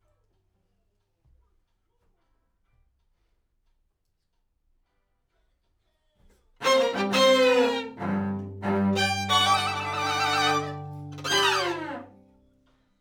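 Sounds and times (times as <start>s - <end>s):
strings: 6.6s - 12.2s.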